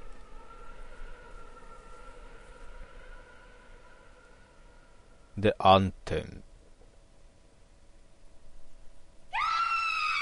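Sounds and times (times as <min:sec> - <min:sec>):
low hum in a video game: 0:00.0 - 0:10.0
speech: 0:05.4 - 0:06.5
woman screaming in a video game: 0:09.3 - 0:10.2.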